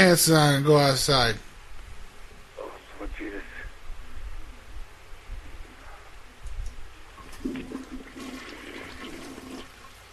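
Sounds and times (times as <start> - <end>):
speech: 0.0 - 1.5
toilet flushing: 7.2 - 9.9.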